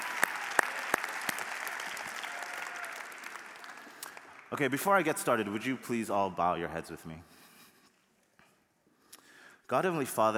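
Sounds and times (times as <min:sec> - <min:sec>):
room full of people applauding: 0:00.0 - 0:05.0
speech: 0:04.5 - 0:07.4, 0:09.7 - 0:10.3.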